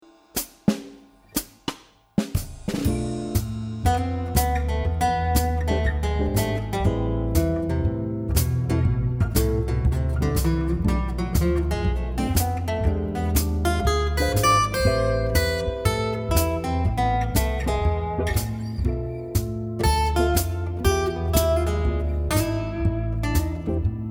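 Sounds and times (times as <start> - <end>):
jazz guitar solo in A minor: 2.8 - 24.0.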